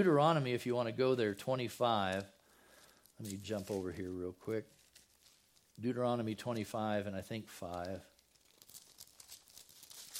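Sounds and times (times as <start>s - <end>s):
speech: 0.0s - 2.4s, 3.2s - 4.8s, 5.8s - 8.1s
Bible pages being flipped through: 3.2s - 5.9s, 7.4s - 10.1s.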